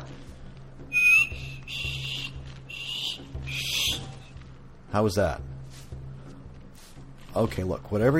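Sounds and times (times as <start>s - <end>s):
person attempting to whistle: 0.9s - 4.1s
speech: 4.9s - 5.5s, 7.4s - 8.1s.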